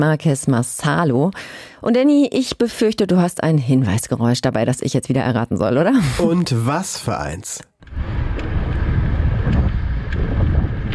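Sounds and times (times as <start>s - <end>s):
speech: 0.0s - 8.5s
low rolling rumble of a bicycle being ridden through Sasel: 7.8s - 10.9s
steady rushing wind: 7.8s - 10.9s.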